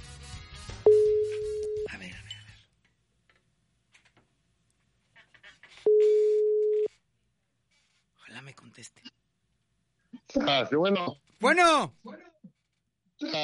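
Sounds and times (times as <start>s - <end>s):
telephone ringback tone while a call is being dialed: 0.9s - 1.9s, 5.9s - 6.9s
speech: 10.5s - 12.0s.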